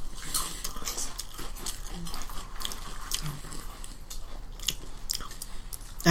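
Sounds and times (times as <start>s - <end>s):
chewing a crunchy salty seaweed snack: 0.0s - 6.0s.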